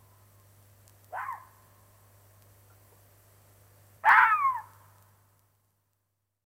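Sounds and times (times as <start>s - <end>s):
low steady hum: 0.0s - 6.4s
Red fox rasping cry and harsh screech for social interaction: 1.1s - 1.5s, 4.0s - 4.8s.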